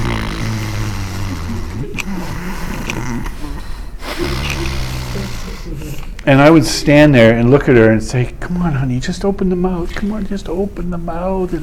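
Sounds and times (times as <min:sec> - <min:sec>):
person imitating a small child with a cold breathing through a blocked nose: 0:00.0 - 0:06.2
speech: 0:06.3 - 0:11.6.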